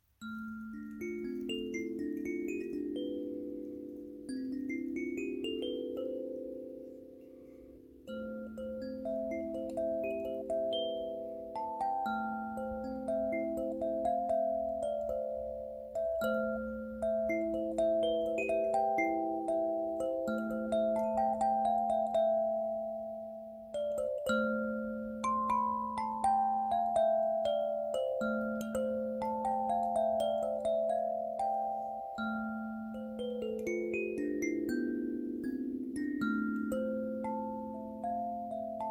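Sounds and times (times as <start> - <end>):
17-tone birdseye ash kalimba in A minor: 0.0 - 38.8.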